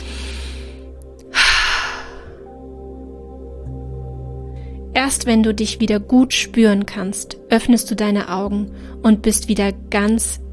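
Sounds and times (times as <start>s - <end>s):
deep forceful breath out: 0.0s - 2.5s
soft sustained tonal music bed: 0.0s - 10.5s
speech: 5.0s - 10.4s.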